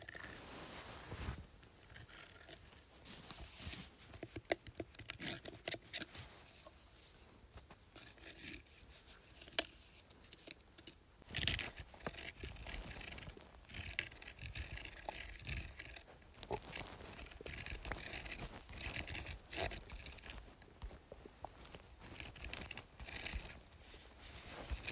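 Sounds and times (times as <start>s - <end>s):
softer rubbing sounds: 0.0s - 4.4s, 5.1s - 10.6s, 11.5s - 24.9s
fingernails dry scratching and rasping across a speaker: 11.4s - 20.4s.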